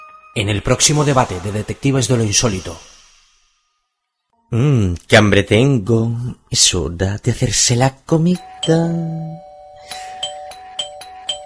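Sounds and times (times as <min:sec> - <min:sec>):
speech: 0:00.4 - 0:02.9, 0:04.5 - 0:10.0
doorbell ringing ding-dong: 0:08.3 - 0:11.4.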